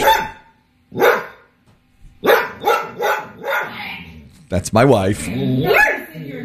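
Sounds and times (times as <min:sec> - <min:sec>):
household dog barking at a passing dog: 0:00.0 - 0:01.6, 0:02.2 - 0:03.8, 0:05.7 - 0:06.1
speech: 0:04.5 - 0:06.3.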